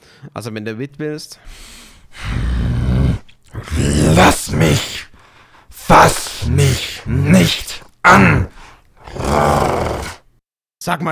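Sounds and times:
speech: 0.2 - 2.4, 4.2 - 5.1, 6.5 - 8.4, 10.8 - 11.0
deep rasping growls: 1.5 - 10.2.

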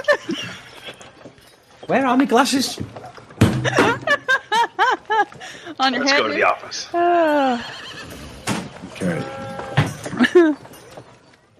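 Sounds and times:
laughter: 0.0 - 0.9, 3.6 - 5.8, 10.1 - 10.6
hooves knocking: 0.0 - 11.5
horse whinnying: 0.2 - 1.3, 6.9 - 10.3
speech: 1.9 - 3.0, 3.6 - 4.0, 5.8 - 7.8, 9.0 - 9.4.

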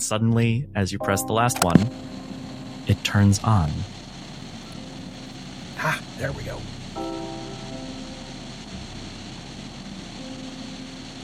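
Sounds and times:
speech: 0.0 - 2.2, 2.9 - 4.0, 5.8 - 6.7
static hiss of a running tape recorder: 3.9 - 11.2.

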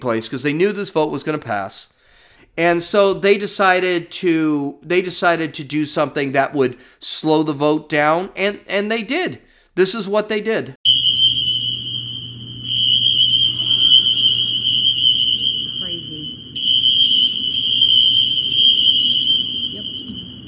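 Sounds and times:
speech: 0.0 - 2.0, 2.6 - 10.8
fire alarm blaring inside a building: 10.8 - 20.4.

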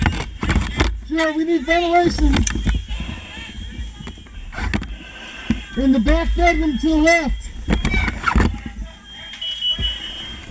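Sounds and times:
high-pitched fire alarm sounding: 0.0 - 10.4
speech: 1.1 - 2.7, 5.8 - 7.8.

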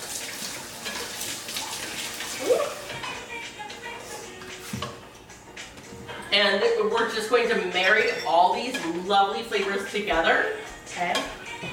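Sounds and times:
running tap water splashing over fingers being rinsed: 0.0 - 3.2
speech: 6.4 - 11.4.

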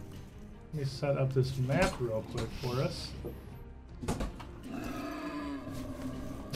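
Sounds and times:
speech: 0.7 - 4.2
angry boar rasping growl: 4.6 - 6.5.

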